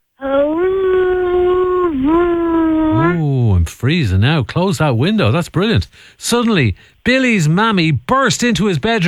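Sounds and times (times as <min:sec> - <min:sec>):
voice imitating howling wind: 0:00.2 - 0:03.8
speech: 0:03.8 - 0:09.0.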